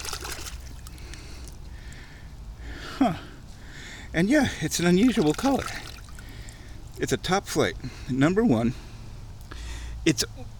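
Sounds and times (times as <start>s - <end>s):
water sloshing and trickling as a golf ball is washed off: 0.0s - 1.6s, 4.5s - 7.2s
speech: 3.0s - 3.3s, 4.1s - 5.9s, 7.0s - 8.8s, 10.0s - 10.5s.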